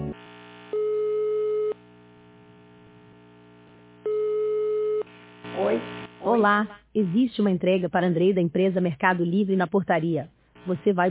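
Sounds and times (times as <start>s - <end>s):
faint hum: 0.2s - 8.2s, 9.6s - 11.1s
telephone ringing tone from a building concierge intercom: 0.8s - 1.8s, 4.0s - 5.1s
speech: 6.4s - 11.1s.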